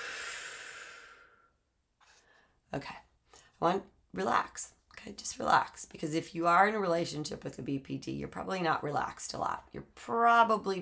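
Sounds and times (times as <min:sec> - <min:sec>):
deep exhale during a guided relaxation breathing exercise: 0:00.0 - 0:02.4
speech: 0:02.7 - 0:03.0, 0:03.6 - 0:10.8.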